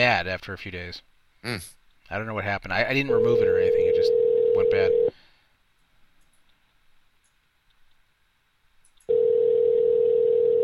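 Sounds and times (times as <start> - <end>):
speech: 0.0 - 5.2
telephone ringing tone of an unanswered connected call: 3.1 - 5.1, 9.1 - 10.6.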